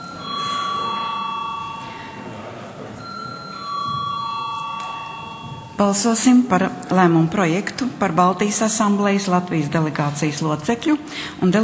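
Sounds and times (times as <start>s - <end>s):
electric bell ringing in a parliament chamber before a vote: 0.0s - 6.5s
faint room murmur in a parliament chamber: 0.0s - 11.6s
speech: 5.8s - 11.6s.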